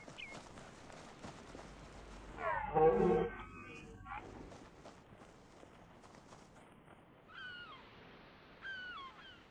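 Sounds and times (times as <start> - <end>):
faint outdoor ambience: 0.0 - 9.4
red deer stag roaring in the rut beside water: 2.4 - 4.2.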